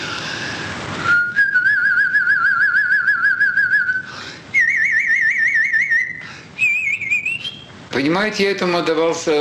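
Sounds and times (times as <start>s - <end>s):
loud human whistle warbling trill: 1.0s - 7.7s
speech: 8.0s - 9.3s.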